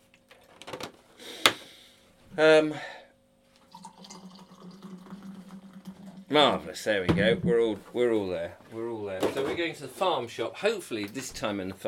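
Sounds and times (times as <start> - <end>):
speech: 2.4 - 3.0, 6.3 - 11.8
coffee pouring into a cup: 3.6 - 7.4.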